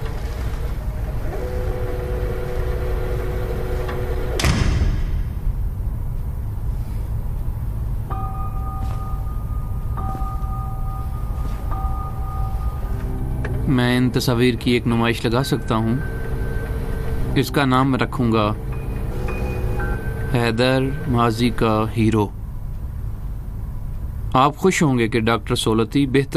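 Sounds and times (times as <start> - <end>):
steady low engine-like rumble: 0.0 - 24.8
soft steady humming tones: 0.0 - 25.7
door shutting with a solid thud: 3.9 - 5.8
repeating two-note beep: 8.1 - 13.3
speech: 13.8 - 16.2, 17.4 - 18.8, 20.3 - 22.4, 24.4 - 26.3.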